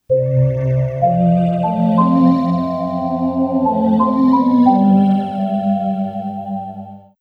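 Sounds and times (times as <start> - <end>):
ambient keys: 0.1 - 7.1.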